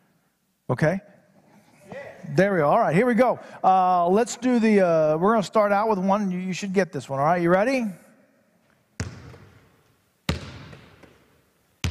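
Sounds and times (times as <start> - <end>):
speech: 0.7 - 1.1, 2.2 - 8.0
basketball bouncing on a hard floor: 9.0 - 9.7, 10.3 - 11.2.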